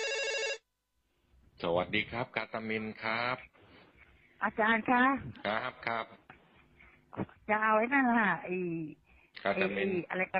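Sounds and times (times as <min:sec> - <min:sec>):
telephone ringing as a caller phones in: 0:00.0 - 0:00.6
speech: 0:01.6 - 0:03.6, 0:04.4 - 0:06.2, 0:07.1 - 0:10.3.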